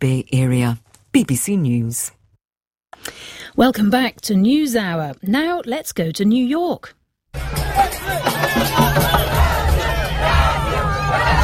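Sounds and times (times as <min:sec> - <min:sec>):
speech: 0:00.0 - 0:02.2, 0:03.6 - 0:07.0, 0:07.8 - 0:09.2
crowd of football fans shouting and chanting before a match: 0:07.4 - 0:11.4.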